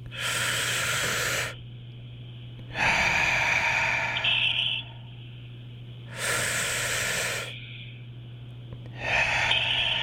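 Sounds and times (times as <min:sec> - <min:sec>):
deep breaths drawn in and let out: 0:00.0 - 0:01.6, 0:02.7 - 0:05.1, 0:06.1 - 0:08.1, 0:08.9 - 0:10.0
faint steady low hum: 0:00.0 - 0:10.0.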